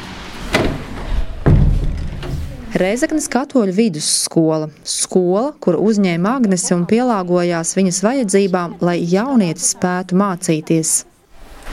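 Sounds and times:
school door opening and closing: 0.0s - 2.9s
speech: 2.8s - 11.1s.

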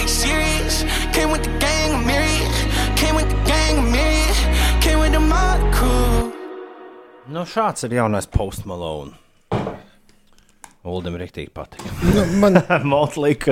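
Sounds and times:
pop song with sung vocal over bass and beat: 0.0s - 7.7s
speech: 7.3s - 9.7s, 10.8s - 13.5s
laughter: 11.9s - 13.1s.

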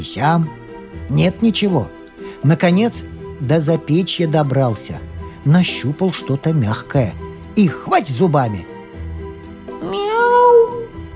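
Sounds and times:
speech: 0.0s - 8.7s
kitten meowing: 9.8s - 10.9s.

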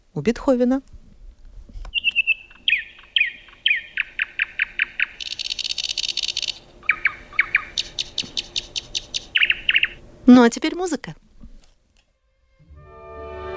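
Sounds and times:
speech: 0.2s - 0.9s, 10.3s - 11.2s
nightingale singing: 1.9s - 10.0s.

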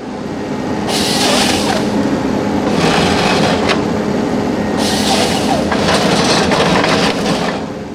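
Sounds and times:
forestry harvester engine droning loudly: 0.0s - 7.9s.

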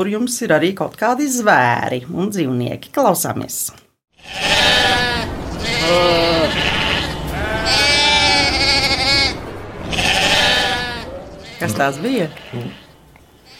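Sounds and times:
speech: 0.0s - 6.7s, 11.6s - 12.8s
sheep bleating: 4.2s - 13.5s.

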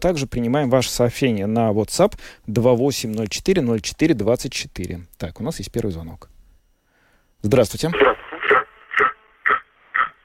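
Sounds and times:
speech: 0.0s - 6.3s, 7.4s - 8.1s
radio receiver feedback over a phone line: 7.9s - 10.2s.

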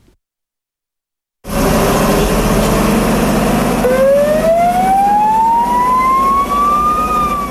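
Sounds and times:
old volunteer fire engine siren winding up in Gaviezē South Kurzeme: 1.5s - 7.4s.

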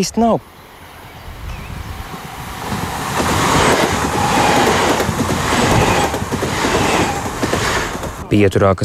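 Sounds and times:
speech: 0.0s - 0.6s, 8.3s - 8.8s
train rumbling past: 0.5s - 8.6s
rolling train wheel clatter: 2.7s - 8.3s.

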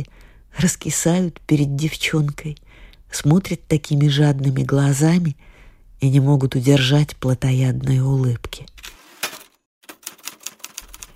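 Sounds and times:
speech: 0.0s - 9.0s
typewriter keys clacking sharply: 9.8s - 11.1s.

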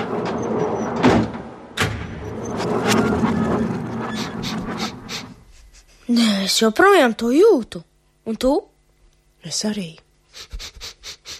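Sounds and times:
heavy radio archive door pulled open: 0.0s - 5.3s
heavy radio archive door thumping shut: 1.0s - 2.4s
speech: 6.1s - 8.7s, 9.4s - 10.8s.

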